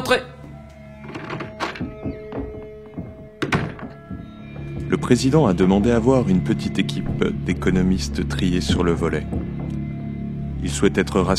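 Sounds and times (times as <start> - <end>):
speech: 0.1 - 0.4, 4.9 - 9.4, 10.6 - 11.3
knocking on a door: 1.0 - 5.1, 8.7 - 9.7.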